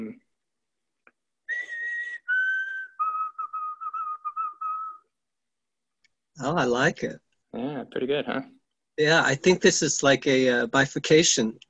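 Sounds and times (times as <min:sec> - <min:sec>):
person whistling imitation of white-throated sparrow song: 0:01.5 - 0:05.1
speech: 0:06.4 - 0:11.6.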